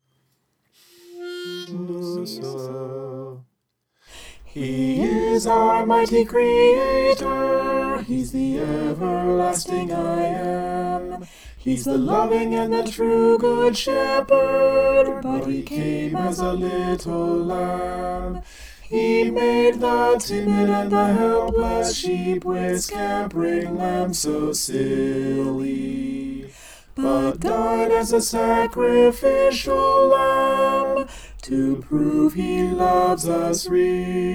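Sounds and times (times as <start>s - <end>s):
soprano singing: 4.2s - 34.3s.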